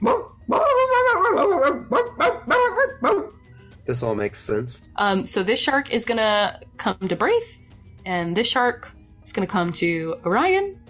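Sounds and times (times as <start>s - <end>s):
dog barking: 0.0s - 3.4s
speech: 3.9s - 10.8s.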